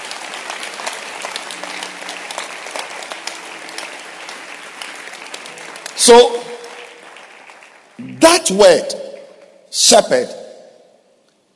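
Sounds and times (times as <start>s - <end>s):
audience clapping hands: 0.0s - 9.6s
speech: 6.0s - 6.4s, 8.4s - 9.0s, 9.7s - 10.4s.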